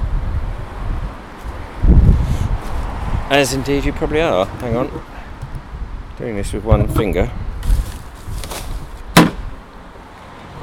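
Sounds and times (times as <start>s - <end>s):
gusty wind buffeting the microphone outdoors on a windy day: 0.0s - 9.6s
speech: 3.3s - 5.2s, 6.2s - 7.4s
plastic bag rustling: 7.6s - 9.0s.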